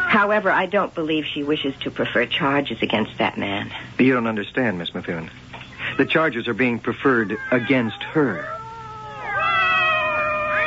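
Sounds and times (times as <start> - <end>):
speech: 0.1 - 5.4, 6.0 - 8.6
cat meowing: 5.8 - 6.4, 7.0 - 10.6.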